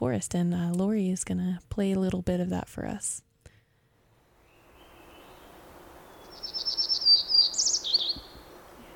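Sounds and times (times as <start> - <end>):
speech: 0.0 - 3.3
hermit warbler singing in the H.J. Andrews Experimental Forest: 4.3 - 8.9.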